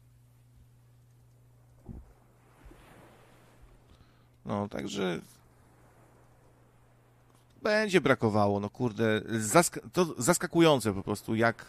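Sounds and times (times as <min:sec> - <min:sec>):
faint wind: 0:00.0 - 0:11.6
low hum: 0:00.0 - 0:11.6
soft ocean waves: 0:00.0 - 0:11.6
low thump: 0:01.8 - 0:03.0
speech: 0:04.5 - 0:05.4, 0:07.6 - 0:11.6.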